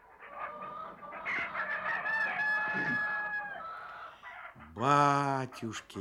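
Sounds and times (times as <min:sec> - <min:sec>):
hens clucking in a poultry yard: 0:00.0 - 0:05.9
rooster crowing in a poultry yard: 0:00.3 - 0:04.3
speech: 0:04.8 - 0:05.9.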